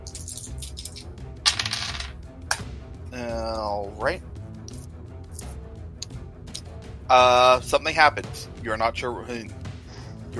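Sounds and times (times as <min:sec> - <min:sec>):
dice rattling and tumbling across a hard surface behind a screen: 0:00.0 - 0:02.2
brief dice clack: 0:00.0 - 0:02.7
speech: 0:03.2 - 0:04.3, 0:07.1 - 0:09.6.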